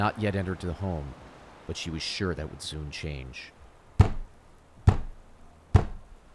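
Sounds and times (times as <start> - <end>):
speech: 0.0 - 4.2
heavy knocking on a door: 4.0 - 4.3, 4.9 - 5.2, 5.8 - 6.1.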